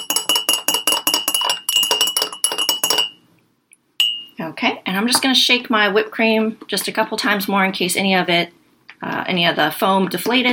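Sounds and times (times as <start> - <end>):
spoon clinking against a glass while stirring sugar into coffee: 0.0 - 3.2, 4.0 - 4.4
speech: 4.5 - 10.5.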